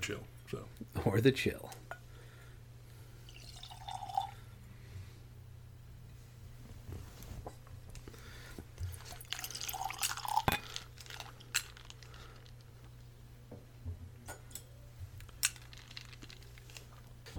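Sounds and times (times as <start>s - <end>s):
speech: 0.0s - 1.8s
steady low hum: 0.0s - 17.3s
whiskey glass clinking: 3.4s - 4.3s, 9.1s - 10.7s.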